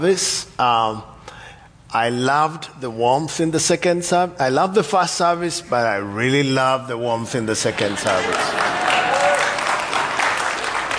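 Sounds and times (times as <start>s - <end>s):
speech: 0.0s - 1.2s, 1.9s - 9.0s
sizable audience applauding: 7.8s - 10.9s.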